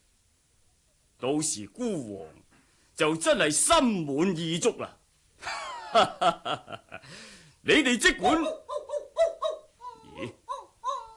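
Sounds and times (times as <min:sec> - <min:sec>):
speech: 0:01.2 - 0:02.4, 0:03.0 - 0:08.7, 0:10.2 - 0:10.4
dog barking in short high whining yelps: 0:08.2 - 0:11.1.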